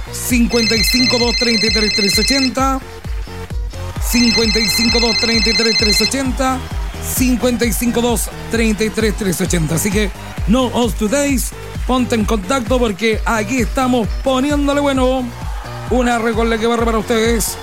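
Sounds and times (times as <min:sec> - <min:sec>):
speech: 0:00.1 - 0:03.1, 0:04.0 - 0:17.6
telephone ringtone with melodic jingle over electronic tones: 0:00.3 - 0:02.8, 0:04.1 - 0:06.3.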